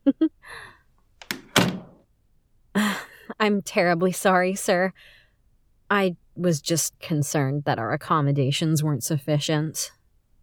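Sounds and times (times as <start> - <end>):
door latch knock: 1.2 - 2.0
door swinging shut with a solid thunk: 1.2 - 2.0
speech: 3.4 - 5.2, 5.9 - 10.0.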